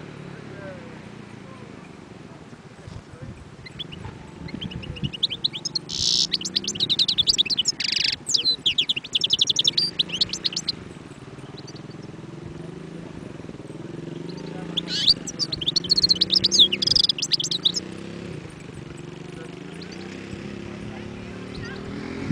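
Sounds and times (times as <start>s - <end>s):
wild European goldfinch tinkling liquid twitters: 3.6s - 12.2s, 13.7s - 22.2s
European goldfinch harsh nasal buzz: 3.7s - 10.8s, 14.1s - 18.1s.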